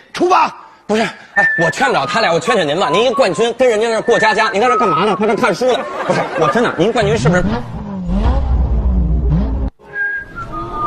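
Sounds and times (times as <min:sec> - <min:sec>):
speech: 0:00.2 - 0:08.2
laughter: 0:04.9 - 0:07.5
voice imitating a revving taxi engine: 0:06.9 - 0:09.7.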